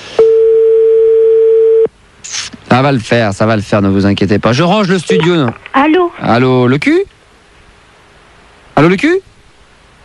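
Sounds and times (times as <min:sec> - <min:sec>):
telephone ringback tone on an unanswered late-night call: 0:00.2 - 0:01.9
speech: 0:02.7 - 0:07.1, 0:08.8 - 0:09.3.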